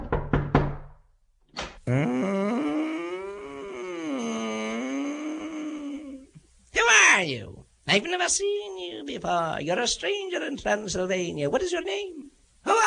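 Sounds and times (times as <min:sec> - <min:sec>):
knocking on a door: 0:00.0 - 0:01.0
long loud wavering groan-like tone: 0:01.9 - 0:06.3
speech: 0:07.2 - 0:12.8.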